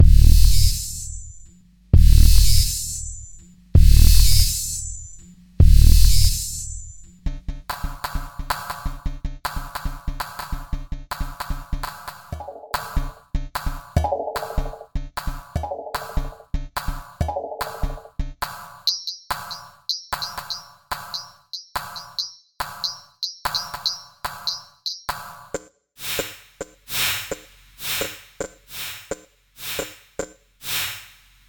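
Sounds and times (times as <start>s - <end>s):
Atari drums: 0.0s - 1.4s, 2.0s - 25.6s.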